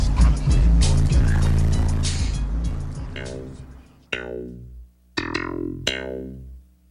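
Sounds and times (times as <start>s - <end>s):
punchy ringing musical hits: 0.0s - 4.7s
booming bass-heavy music from car stereo: 0.0s - 6.8s
car passing: 0.6s - 3.9s.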